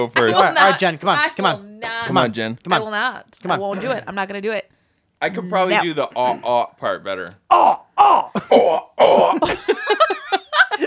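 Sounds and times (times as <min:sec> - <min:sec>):
speech: 0:00.0 - 0:10.2
laughter: 0:00.2 - 0:02.9, 0:09.2 - 0:10.8
person imitating a cat hacking up a hairball: 0:00.2 - 0:04.1, 0:05.7 - 0:06.6, 0:07.5 - 0:09.5.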